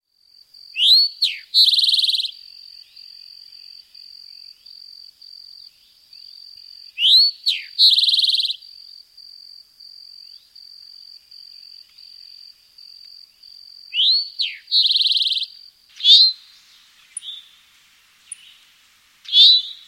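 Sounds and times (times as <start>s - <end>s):
eastern towhee singing: 0.8s - 4.8s, 5.6s - 8.6s, 13.3s - 19.8s.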